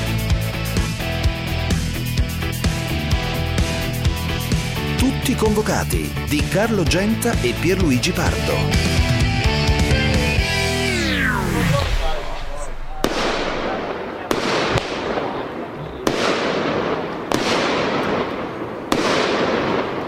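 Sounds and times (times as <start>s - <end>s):
fireworks crackling rumble: 0.0s - 9.2s, 10.8s - 20.0s
speech: 5.3s - 9.1s
falling tone: 9.8s - 14.3s
fireworks bangs: 10.9s - 20.0s.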